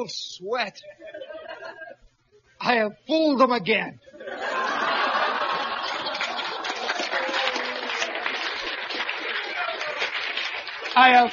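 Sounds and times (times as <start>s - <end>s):
speech: 0.0s - 1.8s, 2.6s - 4.6s, 11.0s - 11.3s
large audience laughing: 0.8s - 2.1s, 4.2s - 10.2s
large audience applauding: 4.6s - 11.3s.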